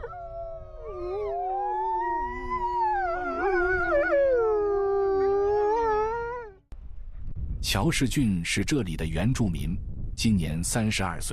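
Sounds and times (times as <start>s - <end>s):
wolves howling in a loud chorus: 0.0s - 6.6s
speech: 7.7s - 11.3s.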